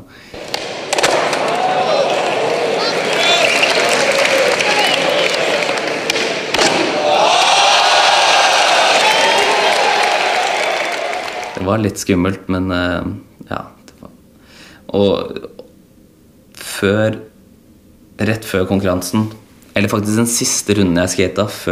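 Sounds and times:
large crowd shouting, cheering and screaming: 0:00.3 - 0:11.6
thud: 0:00.4 - 0:01.4, 0:06.1 - 0:07.0
speech: 0:11.7 - 0:13.8, 0:14.9 - 0:15.6, 0:16.8 - 0:17.3, 0:18.2 - 0:21.7.

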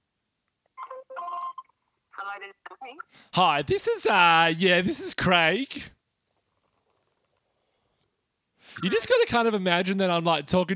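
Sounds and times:
electronic telephone ring of an outgoing phone call: 0:00.8 - 0:03.0
speech: 0:02.4 - 0:06.0, 0:08.8 - 0:10.7.

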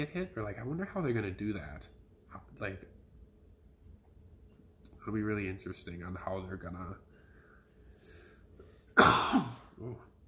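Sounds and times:
speech: 0:00.0 - 0:03.0, 0:05.0 - 0:07.1, 0:09.0 - 0:10.1
sharp cough with a broad noisy rasp: 0:09.0 - 0:10.0.

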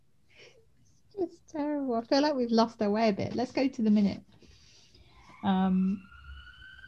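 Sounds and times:
speech: 0:01.3 - 0:04.3, 0:05.4 - 0:06.1
emergency vehicle siren passing outside: 0:05.0 - 0:06.8.

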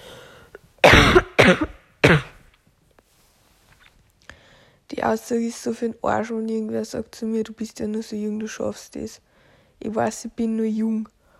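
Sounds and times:
loud harsh coughs: 0:00.8 - 0:02.4
speech: 0:00.9 - 0:01.7, 0:05.1 - 0:11.2.

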